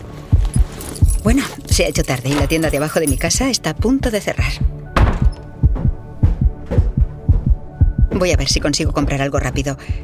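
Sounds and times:
rapid human heartbeat: 0.3s - 1.8s, 3.3s - 9.2s
speech: 1.2s - 4.7s, 8.2s - 10.0s.

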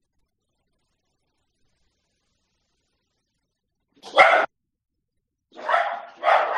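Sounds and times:
dog barking: 4.0s - 4.5s, 5.5s - 6.5s.

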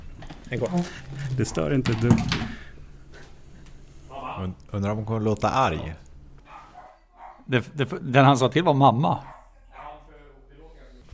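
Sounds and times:
speech: 0.5s - 2.6s, 4.4s - 6.0s, 7.5s - 9.4s
dog barking and yelping: 6.4s - 7.5s, 9.2s - 10.1s.

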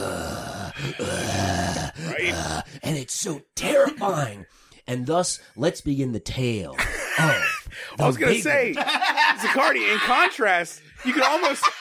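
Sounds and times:
heavy strained breathing with grunting and groaning: 0.0s - 2.9s
speech: 0.8s - 1.5s, 2.2s - 11.7s
laughter: 6.8s - 7.7s, 8.3s - 11.7s.

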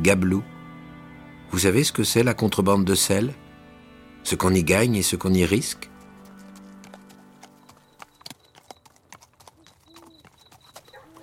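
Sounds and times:
speech: 0.0s - 0.5s, 1.5s - 3.5s, 4.2s - 5.9s
horse hooves clip-clopping at a walking pace: 5.8s - 11.2s.

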